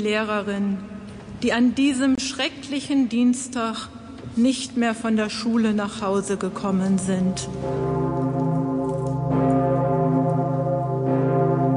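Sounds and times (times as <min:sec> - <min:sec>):
speech: 0:00.0 - 0:08.2
huge deep cathedral bell tolling: 0:07.0 - 0:11.7.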